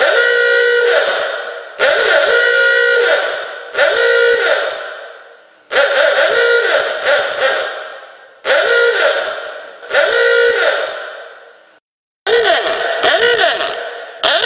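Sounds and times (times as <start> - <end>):
horn of an old jalopy: 0.0 - 5.0, 5.7 - 11.2, 12.2 - 14.4.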